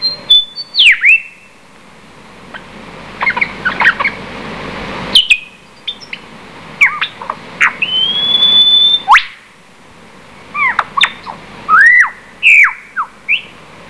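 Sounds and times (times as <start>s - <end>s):
lyrebird song: 0.0s - 1.6s, 2.5s - 4.3s, 5.1s - 9.5s, 10.5s - 13.6s.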